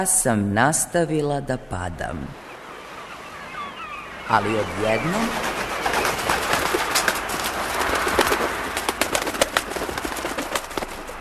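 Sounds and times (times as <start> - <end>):
speech: 0.0 - 2.4, 4.3 - 5.5
flock of pigeons cooing and calling: 3.0 - 11.1
pigeon wings flapping: 3.6 - 11.1
steady rustle: 5.2 - 11.1.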